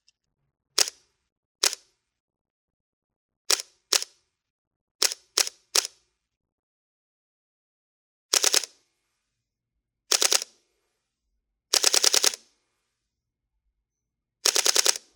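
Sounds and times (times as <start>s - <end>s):
camera shutter: 1.6s - 1.8s, 3.5s - 4.1s, 5.0s - 6.0s, 8.3s - 8.7s, 10.1s - 10.5s, 11.7s - 12.4s, 14.5s - 15.1s.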